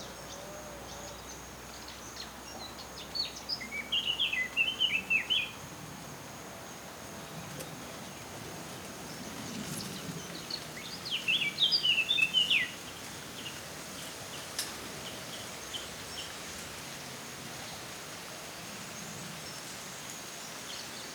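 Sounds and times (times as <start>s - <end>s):
steady background hiss: 0.0s - 21.1s
Eurasian blackcap Sylvia atricapilla song: 2.6s - 5.6s, 8.8s - 16.4s.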